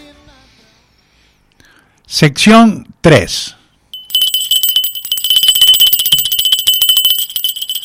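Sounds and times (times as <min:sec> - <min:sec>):
speech: 0:02.1 - 0:03.6
small hand bell ringing: 0:03.9 - 0:07.8.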